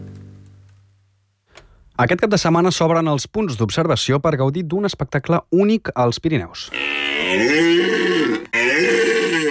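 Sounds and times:
speech: 0:02.0 - 0:07.9
red deer stag bellowing during the autumn rut in the Pyrenees: 0:06.7 - 0:09.4.

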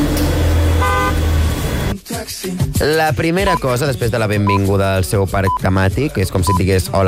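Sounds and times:
busy street traffic rumbling: 0:00.0 - 0:02.0
car horn honking: 0:00.8 - 0:01.3
speech: 0:02.4 - 0:07.0.

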